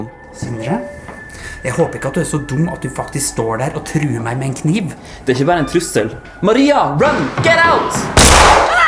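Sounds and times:
speech: 0.0s - 1.0s, 1.6s - 8.2s
high-pitched wavering tone: 0.0s - 6.4s
pistol gunshot: 8.2s - 8.7s.

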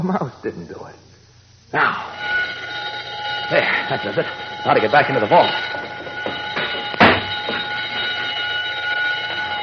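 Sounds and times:
speech: 0.0s - 1.1s, 1.7s - 2.4s, 3.5s - 5.9s
burglar alarm ringing, set off by touching its wire along a door: 1.9s - 9.6s
sharp knock: 6.2s - 7.7s.

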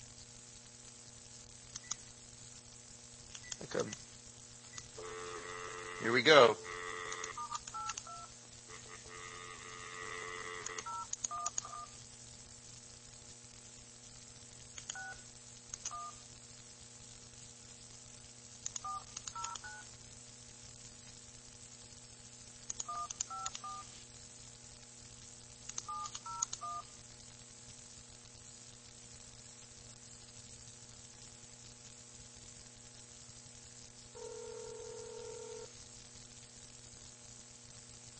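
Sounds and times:
faint low hum: 0.0s - 38.1s
steady hiss: 0.0s - 38.1s
speech: 3.7s - 4.1s, 6.0s - 6.7s
telephone touch-tone dialing beeps: 7.1s - 8.3s, 10.7s - 11.9s, 14.9s - 15.2s, 15.9s - 16.2s, 18.8s - 19.8s, 22.9s - 23.9s, 25.9s - 26.8s.

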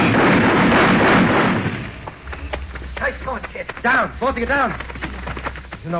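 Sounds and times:
M1 rifle gunfire: 0.0s - 2.0s
speech: 3.8s - 5.0s.

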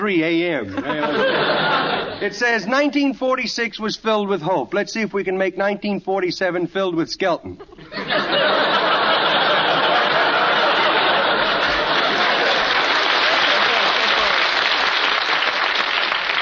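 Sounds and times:
speech: 0.0s - 8.7s
studio audience laughter: 0.7s - 2.4s, 7.6s - 15.1s
studio audience applause: 8.7s - 16.3s.

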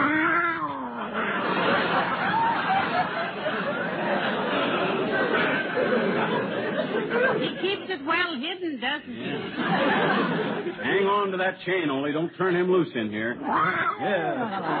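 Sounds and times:
cat yowling: 0.0s - 1.1s, 13.4s - 14.2s
laughter: 0.7s - 8.2s, 9.1s - 11.3s, 13.9s - 14.7s
speech: 8.0s - 14.7s.

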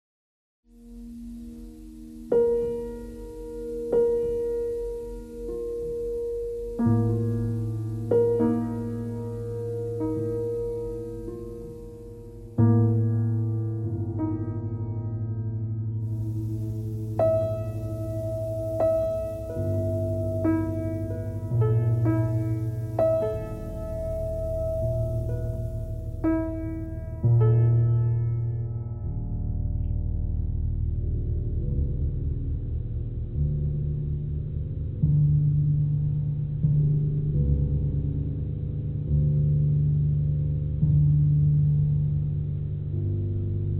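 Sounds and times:
piano noise: 0.7s - 43.7s.

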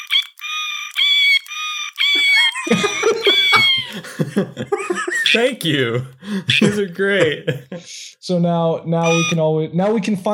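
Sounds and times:
novelty quiz buzzer playing a cat meow: 0.0s - 2.6s, 3.2s - 3.9s, 9.0s - 9.4s
novelty quiz buzzer playing owl sounds: 0.0s - 3.8s, 9.0s - 9.4s
laughter: 2.1s - 8.0s
speech: 2.6s - 3.4s, 4.0s - 10.3s.

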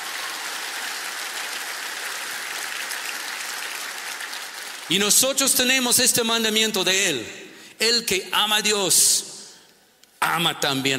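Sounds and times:
audience applauding: 0.0s - 5.0s
speech: 4.9s - 9.4s, 10.3s - 10.9s.

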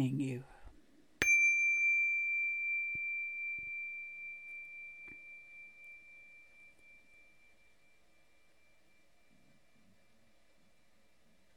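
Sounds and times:
speech: 0.0s - 0.5s
single closing bell struck with a clear ring: 1.2s - 9.7s.

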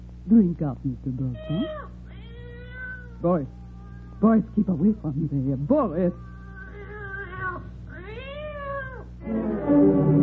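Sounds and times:
speech: 0.3s - 1.9s, 3.2s - 3.6s, 4.2s - 6.3s, 9.3s - 10.1s
cat whining: 1.3s - 4.6s, 6.0s - 9.2s.

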